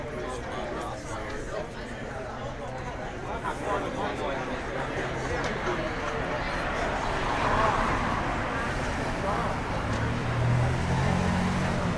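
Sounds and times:
overlapping voices and chatter at a busy city lunchtime: 0.0 - 11.9
city traffic hum: 4.5 - 11.9
low engine rumble: 6.0 - 11.9.

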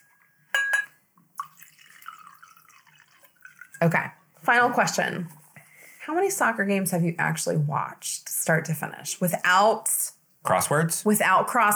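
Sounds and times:
glassy clink: 0.0 - 1.0
wine glugging and splashing into a glass: 0.1 - 4.2
speech: 3.8 - 5.4, 6.1 - 11.7.

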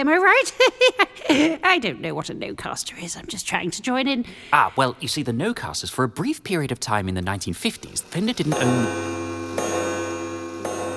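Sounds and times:
speech: 0.0 - 9.3
clock in a modern building ticking: 7.1 - 10.9
steady low hum: 7.8 - 10.9.

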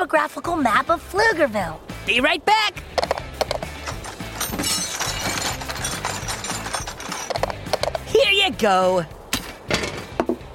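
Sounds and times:
speech: 0.0 - 3.0, 8.2 - 9.2
rummaging through a toolbox: 3.1 - 8.1.

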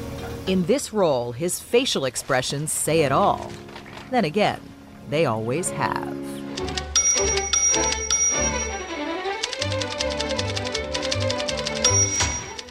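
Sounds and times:
speech: 0.5 - 6.2
bouncy orchestral music: 5.4 - 12.6
typewriter keys clacking: 6.6 - 8.8, 9.4 - 12.6
bright ringing typewriter carriage bell: 6.7 - 12.6.

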